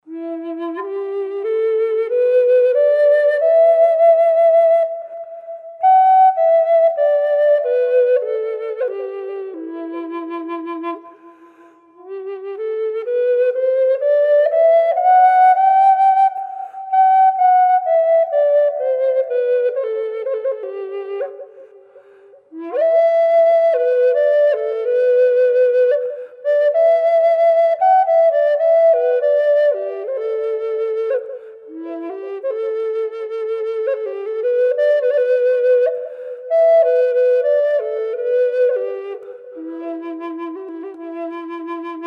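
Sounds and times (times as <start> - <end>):
side-blown tiger maple flute in E minor with wet reverb: 0.0 - 42.0.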